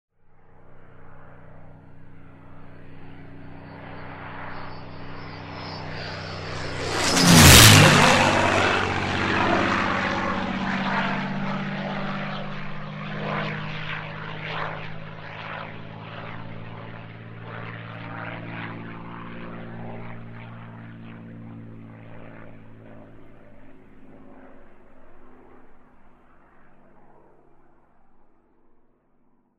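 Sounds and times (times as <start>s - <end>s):
P51 low altitude flyby: 0.1s - 29.4s.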